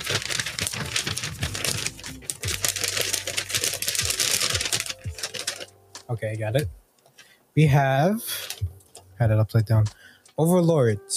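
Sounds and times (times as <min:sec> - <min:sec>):
sheet of paper being picked up and crinkling: 0:00.0 - 0:06.1
speech: 0:06.1 - 0:06.8, 0:07.6 - 0:08.3, 0:09.2 - 0:11.1.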